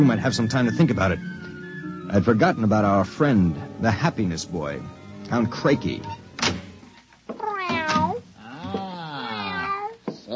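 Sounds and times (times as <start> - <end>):
speech: 0.0 - 1.4, 2.1 - 6.6
cat meowing: 7.3 - 10.3.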